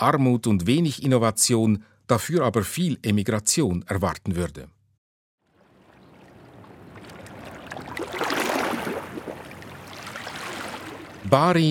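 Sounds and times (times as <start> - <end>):
speech: 0.0 - 4.8, 11.3 - 11.6
waves hitting a harbour wall: 6.2 - 11.3.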